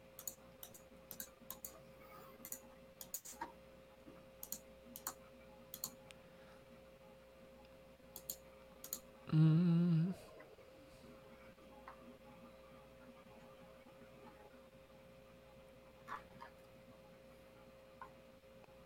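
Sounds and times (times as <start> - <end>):
low steady electrical hum: 0.0 - 18.8
typing on a computer keyboard: 0.2 - 1.8, 2.4 - 3.5, 4.4 - 6.0, 8.2 - 9.0.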